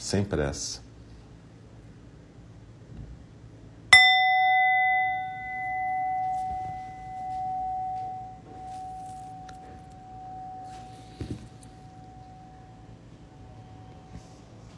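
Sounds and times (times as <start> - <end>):
speech: 0.0 - 0.9
faint noise: 0.0 - 14.7
meditation bell struck and ringing: 3.9 - 14.0.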